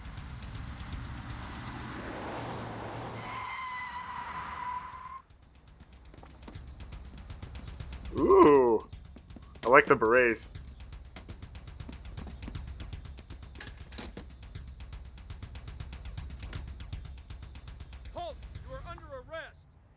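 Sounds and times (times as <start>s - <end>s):
rumbling car engines in a car chase: 0.0s - 19.9s
high wavering tire screech in a car chase: 0.2s - 5.3s
sharp rising tire skid squeal: 1.4s - 5.2s
speech: 8.1s - 8.6s, 9.7s - 10.6s.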